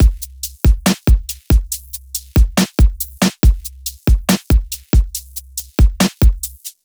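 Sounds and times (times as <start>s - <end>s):
slow-motion beat loop at 140 BPM: 0.0s - 6.8s.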